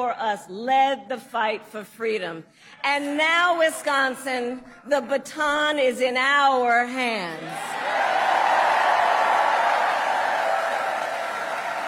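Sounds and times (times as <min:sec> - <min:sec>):
speech: 0:00.0 - 0:08.0
large crowd roaring and cheering at a campaign rally: 0:07.5 - 0:11.8.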